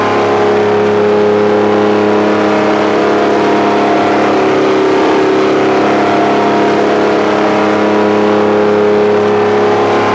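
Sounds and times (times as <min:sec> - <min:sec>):
kart engine off high revs: 0:00.0 - 0:10.1.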